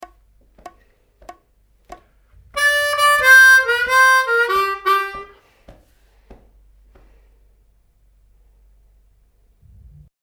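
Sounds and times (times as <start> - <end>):
harmonica shuffle licks: 2.4 - 5.4.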